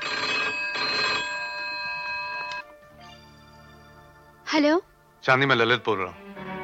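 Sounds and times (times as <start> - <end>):
telephone bell ringing: 0.0 - 4.3
speech: 4.5 - 6.2.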